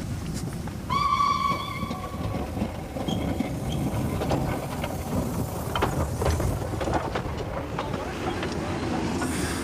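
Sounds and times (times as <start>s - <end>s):
train rumbling along the rails: 0.0s - 9.6s
short train whistle: 0.9s - 2.2s.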